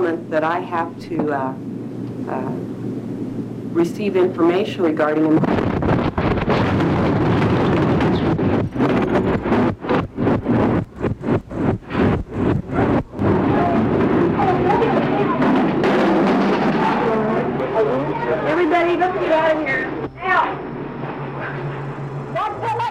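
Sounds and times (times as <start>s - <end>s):
speech: 0.1s - 1.7s, 2.3s - 2.8s, 3.7s - 5.6s
massive bomb explosion rumbling: 5.2s - 22.8s
crashing debris from bomb explosion: 5.5s - 10.4s, 13.3s - 17.8s.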